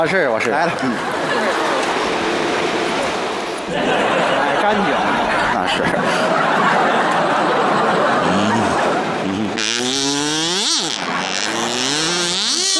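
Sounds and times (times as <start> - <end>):
speech: 0.0 - 2.2, 3.7 - 7.2
laughter: 0.6 - 2.5, 3.6 - 12.7
kazoo being played: 8.2 - 12.7.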